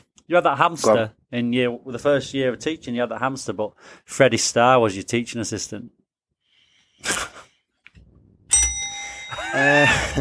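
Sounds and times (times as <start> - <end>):
speech: 0.3 - 6.0, 7.0 - 7.3, 9.5 - 10.1
bell ringing: 8.5 - 10.1.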